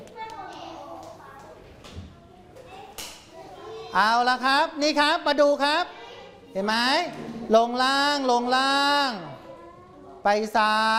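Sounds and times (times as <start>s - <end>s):
children clapping hands: 0.0s - 1.6s
children chattering in a lively room: 0.0s - 10.9s
speech: 3.9s - 9.3s, 10.2s - 10.9s.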